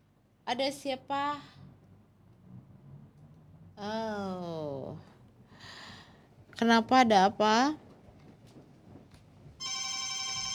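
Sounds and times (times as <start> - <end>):
quiet noise: 0.0 - 10.5
speech: 0.5 - 1.6, 3.8 - 5.1, 6.6 - 7.8
electronic phone call ringtone: 9.6 - 10.5.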